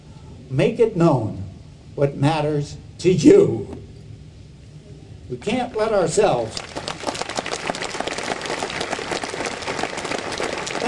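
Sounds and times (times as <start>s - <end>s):
speech: 0.5s - 1.4s, 2.0s - 3.8s, 5.3s - 6.7s
crowd applauding: 6.4s - 10.8s.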